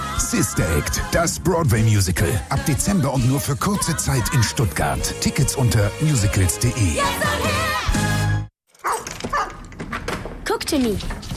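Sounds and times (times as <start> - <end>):
speech: 0.3 - 8.0, 10.7 - 11.2
dog barking: 8.8 - 9.6.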